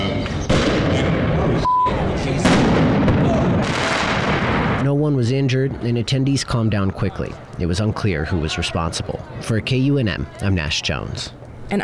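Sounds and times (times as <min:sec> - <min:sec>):
large fireworks exploding: 0:00.4 - 0:01.6, 0:02.4 - 0:04.9
speech: 0:05.1 - 0:11.8.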